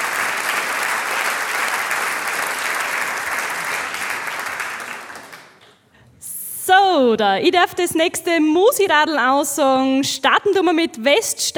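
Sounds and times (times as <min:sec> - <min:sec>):
large audience applauding a mayor and a municipal councillor: 0:00.0 - 0:05.9
speech: 0:07.0 - 0:11.5.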